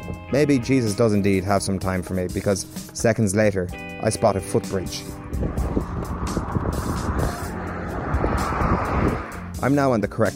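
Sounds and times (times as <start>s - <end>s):
speech: 0.3s - 6.9s, 9.6s - 10.3s
fast cars roaring past on a busy dual carriageway: 4.6s - 9.8s.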